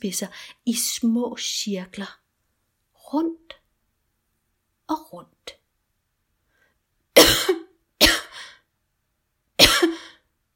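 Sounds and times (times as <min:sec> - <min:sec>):
speech: 0:00.0 - 0:02.2, 0:03.1 - 0:03.6, 0:04.9 - 0:05.4
woman coughing with a raspy wheezy tail: 0:07.2 - 0:08.6, 0:09.6 - 0:10.2.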